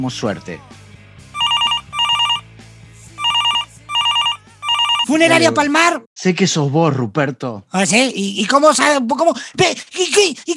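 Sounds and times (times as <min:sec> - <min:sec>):
speech: 0:00.0 - 0:00.8, 0:05.1 - 0:10.5
telephone ringing for an incoming video call: 0:01.4 - 0:02.4, 0:03.2 - 0:05.1.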